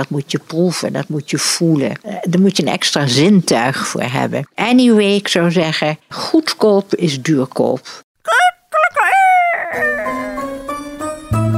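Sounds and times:
speech: 0.0s - 8.4s, 9.7s - 10.1s
rooster crowing: 8.4s - 10.6s.

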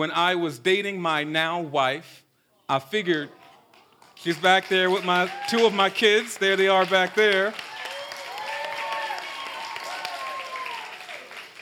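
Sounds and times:
speech: 0.0s - 3.4s, 4.2s - 7.7s
crowd applauding: 3.4s - 11.6s.

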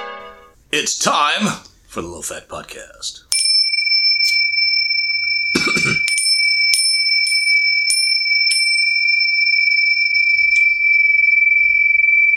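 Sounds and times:
speech: 0.8s - 3.3s
small thin cymbals struck lightly: 3.3s - 12.3s.

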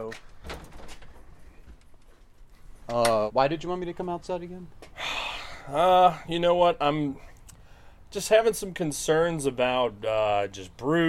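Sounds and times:
speech: 0.0s - 0.4s, 2.9s - 4.8s, 5.7s - 7.3s, 8.1s - 11.0s
door swinging shut with a solid thump: 0.1s - 1.8s.

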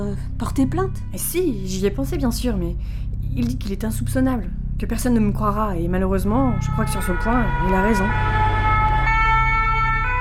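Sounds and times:
speech: 0.0s - 8.5s
emergency vehicle sirens: 7.3s - 10.2s.

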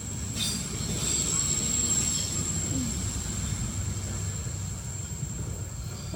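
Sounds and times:
train rumbling past: 0.0s - 6.1s
thin high metallic squeal of train wheels: 0.1s - 2.7s, 4.8s - 6.1s.

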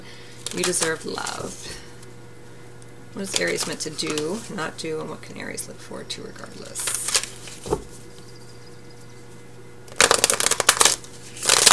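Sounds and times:
low steady hum: 0.0s - 11.7s
deck of cards being shuffled: 0.4s - 2.1s, 3.3s - 4.6s, 6.7s - 8.1s, 9.9s - 11.7s
speech: 0.5s - 1.9s, 3.1s - 7.8s.

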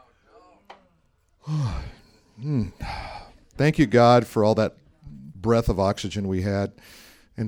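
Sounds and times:
person yawning with a groaning exhale: 0.0s - 0.7s, 1.4s - 3.3s
speech: 2.4s - 3.0s, 3.6s - 4.8s, 5.4s - 7.4s.

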